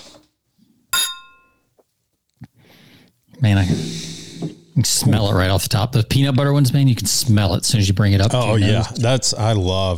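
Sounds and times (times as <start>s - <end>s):
two beer glasses filled with peanut butter cream blonde ale clinking in a toast: 1.0s - 1.6s
speech: 3.4s - 4.0s, 4.8s - 9.9s.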